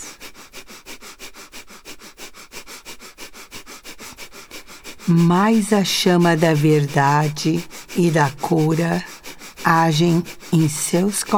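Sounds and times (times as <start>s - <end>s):
rapid breathing in through the nostrils during a breathing exercise: 0.0s - 11.3s
speech: 5.1s - 9.1s, 9.7s - 11.3s.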